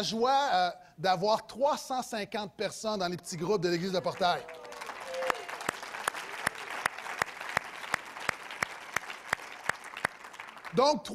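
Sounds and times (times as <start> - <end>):
speech: 0.0 - 4.7, 10.7 - 11.1
church audience clapping in unison: 3.2 - 11.1.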